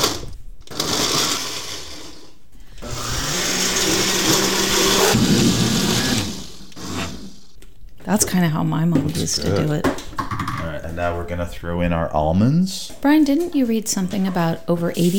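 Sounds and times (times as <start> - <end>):
blender blending chopped tomatoes, onions and peppers: 0.0 - 7.6
speech: 8.1 - 10.1, 10.9 - 15.1.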